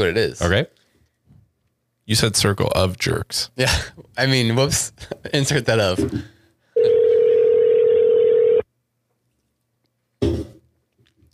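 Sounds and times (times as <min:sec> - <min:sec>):
speech: 0:00.0 - 0:00.8, 0:02.1 - 0:06.4
steady electronic telephone tone: 0:06.8 - 0:08.6.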